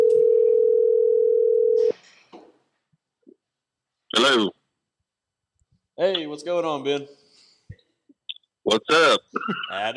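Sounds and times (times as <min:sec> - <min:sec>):
telephone ringing tone of an outgoing phone call: 0:00.0 - 0:01.9
speech: 0:04.2 - 0:04.6, 0:06.0 - 0:07.2, 0:08.7 - 0:09.9.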